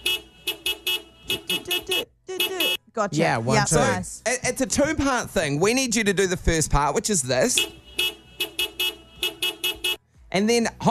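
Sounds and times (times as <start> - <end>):
horn tooting the rhythm of a sports chant: 0.0 - 4.1, 7.4 - 10.2
speech: 1.4 - 2.1, 3.0 - 8.2, 10.3 - 10.8.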